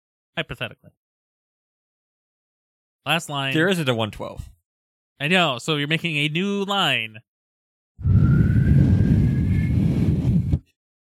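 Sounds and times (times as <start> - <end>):
speech: 0.4 - 1.0, 3.0 - 4.6, 5.2 - 7.3
faint whistling tone: 8.0 - 10.6
blustery wind buffeting a microphone: 8.0 - 10.7.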